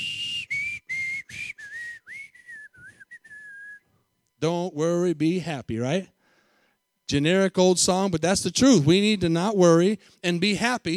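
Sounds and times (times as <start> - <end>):
person whistling a short melodic tune: 0.0 - 4.0
speech: 4.4 - 6.2, 7.1 - 10.9.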